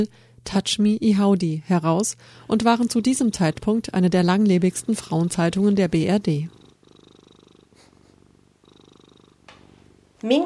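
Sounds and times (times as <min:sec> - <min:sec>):
speech: 0:00.0 - 0:06.6, 0:10.2 - 0:10.4
cat purring: 0:02.2 - 0:10.4.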